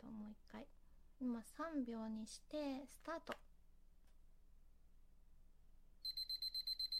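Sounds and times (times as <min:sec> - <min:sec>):
speech: 0:00.0 - 0:03.5
digital timer beeping in high-pitched electronic pips: 0:06.0 - 0:06.9.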